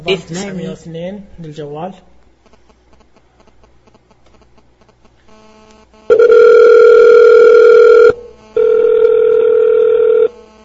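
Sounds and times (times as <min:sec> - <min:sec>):
speech: 0:00.0 - 0:02.1
electronic ringback tones on a phone line: 0:06.1 - 0:10.3.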